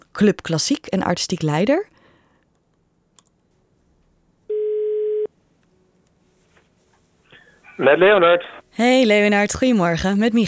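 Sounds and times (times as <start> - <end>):
faint hum: 0.0 - 10.4
speech: 0.2 - 1.9, 7.8 - 10.4
steady electronic telephone tone: 4.5 - 5.3.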